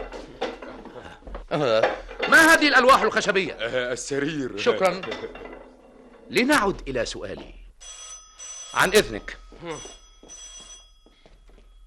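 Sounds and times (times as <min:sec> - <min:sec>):
speech: 0:01.5 - 0:05.4, 0:06.3 - 0:07.9, 0:08.7 - 0:10.0
telephone bell ringing: 0:07.8 - 0:11.8.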